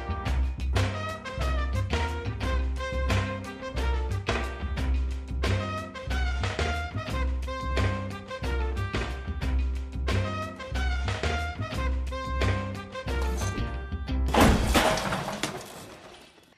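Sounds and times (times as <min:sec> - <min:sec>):
band playing driving jazz with drums and horns: 0:00.0 - 0:14.1
hurled chair crashing: 0:13.2 - 0:16.4.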